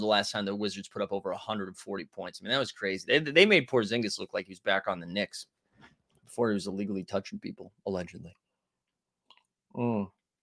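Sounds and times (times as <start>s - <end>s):
speech: 0.0s - 8.4s, 9.7s - 10.2s
small wet mouth clicks: 9.2s - 9.5s.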